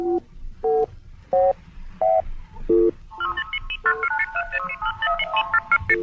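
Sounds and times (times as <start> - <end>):
electronic radio beacon signal identifying a broadcast: 2.1 - 6.0.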